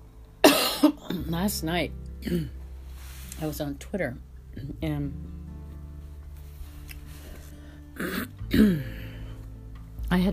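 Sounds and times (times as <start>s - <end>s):
person clearing throat: 0.4s - 1.2s, 2.2s - 2.6s, 8.0s - 9.1s
person coughing: 0.4s - 1.2s, 2.2s - 2.6s, 8.0s - 9.0s
speech: 0.8s - 2.6s, 3.4s - 5.4s, 8.0s - 9.0s, 10.1s - 10.3s.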